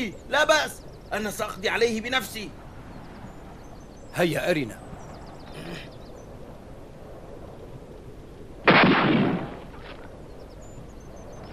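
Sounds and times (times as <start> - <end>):
speech: 0.0 - 2.6, 4.1 - 4.8, 5.6 - 6.0
rifle gunshot: 8.6 - 9.7.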